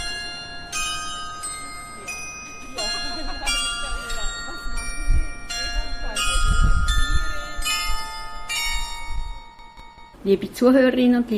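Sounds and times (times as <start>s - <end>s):
faint street bustle in Zürich: 0.0s - 10.3s
glockenspiel at a jewellery shop on Bahnhofstrasse in Zürich Switzerland playing: 0.0s - 10.4s
murmuring voices: 1.8s - 8.2s
speech: 10.2s - 11.3s.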